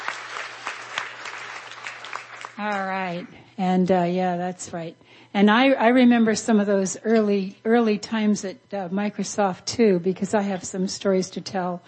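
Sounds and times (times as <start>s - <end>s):
audience applause for a guest at a weekend event: 0.0s - 2.6s
speech: 2.6s - 11.8s.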